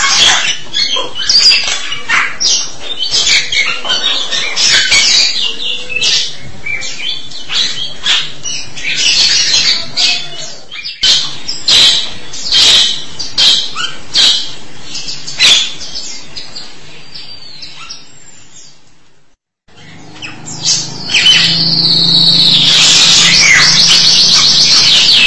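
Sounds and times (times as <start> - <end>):
starling singing harsh rasping bursts and whistled notes: 0.0 - 18.4, 19.7 - 25.2.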